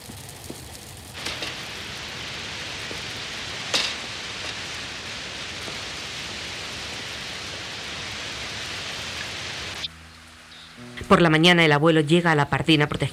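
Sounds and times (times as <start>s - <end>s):
louder raindrops or splashes: 0.0s - 10.4s
steady rain pouring down on a street: 0.0s - 13.1s
speech: 11.1s - 13.1s.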